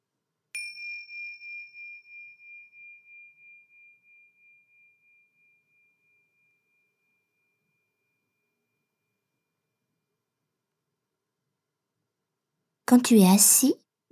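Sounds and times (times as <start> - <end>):
small bell struck to begin a meditation exercise: 0.6 - 4.2
speech: 12.9 - 14.1.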